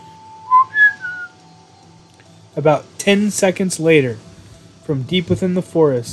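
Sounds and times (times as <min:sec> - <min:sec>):
steady faint hum: 0:00.0 - 0:06.1
person by a car whistling a low-high-low three-note phrase: 0:00.4 - 0:01.4
speech: 0:02.6 - 0:04.3, 0:04.9 - 0:06.1.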